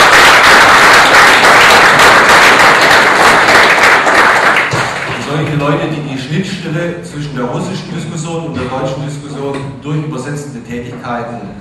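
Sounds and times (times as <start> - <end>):
large audience applauding at a film screening: 0.0 - 5.5
speech: 5.8 - 11.5.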